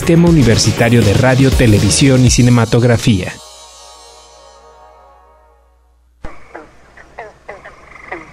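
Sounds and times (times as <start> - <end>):
speech: 0.0 - 3.4
sustained ringing trill: 2.6 - 6.1
noisy outdoor background: 6.0 - 8.3
toad croaking: 6.2 - 8.3.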